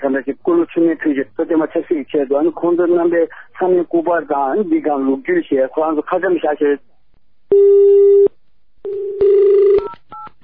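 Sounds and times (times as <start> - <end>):
speech: 0.1 - 8.3, 8.9 - 10.4
telephone line electronic tone: 7.5 - 10.3.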